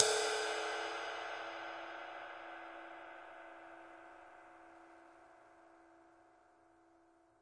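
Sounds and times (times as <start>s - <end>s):
big ride cymbal single hit: 0.0s - 2.9s.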